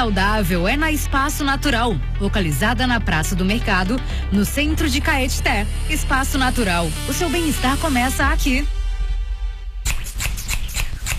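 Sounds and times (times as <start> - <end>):
speech: 0.0 - 8.8
scissors being sharpened with gritty metallic scraping strokes: 9.9 - 11.1.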